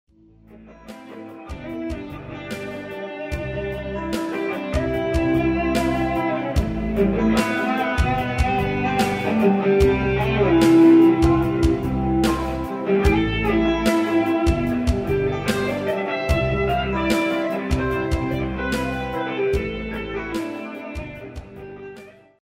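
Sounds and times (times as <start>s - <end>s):
simple guitar: 0.2s - 22.4s.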